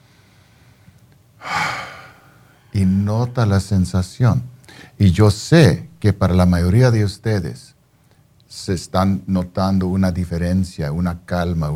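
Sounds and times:
slow breath drawn in during a guided breathing exercise: 0.0 - 2.6, 4.7 - 5.0
speech: 2.8 - 7.7, 8.5 - 11.7.

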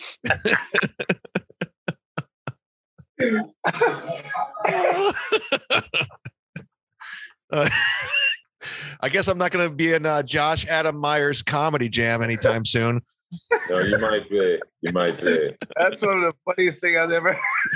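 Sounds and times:
laughter: 0.1 - 2.6, 3.6 - 8.5, 13.5 - 16.4, 17.2 - 17.7
speech: 0.2 - 1.1, 4.7 - 5.8, 7.5 - 8.0, 9.0 - 17.7
short sharp coughs and throat-clearing: 0.2 - 6.4, 7.5 - 8.5, 13.6 - 16.1.

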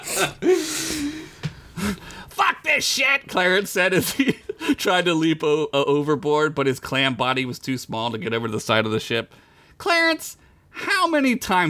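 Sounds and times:
person gasping for air with breathy inhales and strained exhales: 0.0 - 2.3
speech: 0.2 - 1.1, 2.8 - 11.6.

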